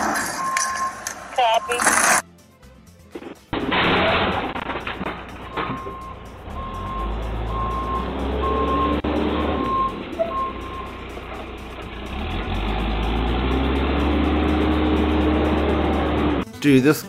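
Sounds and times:
backhoe reversing alarm beeps: 0.4s - 2.0s, 5.5s - 11.0s
backhoe engine rumble: 3.6s - 16.4s.

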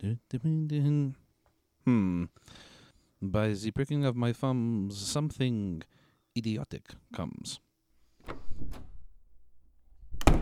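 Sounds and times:
speech: 0.0s - 1.2s, 1.8s - 7.6s
door rattling: 8.2s - 9.4s, 10.0s - 10.4s
door splintering open with a loud bang: 10.1s - 10.4s
heavy thumps on a door being forced open: 10.2s - 10.4s.

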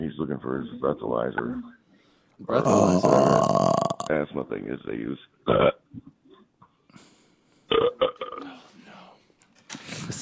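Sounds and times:
speech: 0.2s - 1.8s, 2.4s - 6.1s
person burping loudly: 2.5s - 4.2s, 5.5s - 6.5s, 7.7s - 8.5s.

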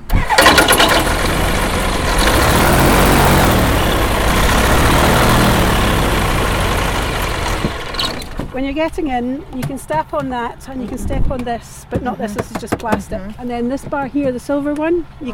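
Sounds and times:
light aircraft engine starting and idling: 0.0s - 8.7s
speech: 8.6s - 15.3s.

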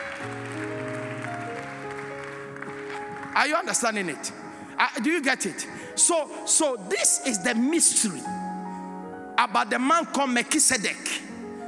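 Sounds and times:
large crowd applauding: 0.0s - 4.1s
sustained keyboard chords: 0.0s - 11.6s
speech: 3.4s - 8.6s, 9.4s - 11.3s.

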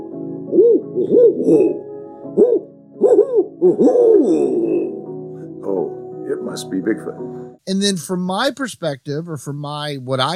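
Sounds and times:
great gray or barred owl hooting: 0.5s - 5.0s
speech: 1.0s - 2.7s, 3.6s - 4.9s, 6.4s - 10.3s.

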